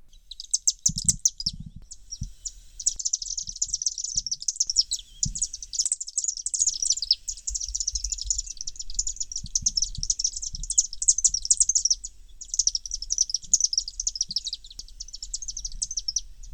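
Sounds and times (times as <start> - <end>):
low rumble: 0.0 - 16.5
swifts chittering while flying overhead in a downtown: 0.0 - 16.5.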